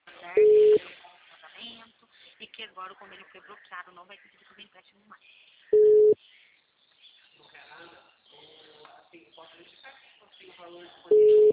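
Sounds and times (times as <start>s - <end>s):
phone line failed-call beep tone: 0.4s - 0.8s, 5.8s - 6.2s, 11.1s - 11.5s
speech: 2.6s - 6.0s, 9.1s - 11.5s.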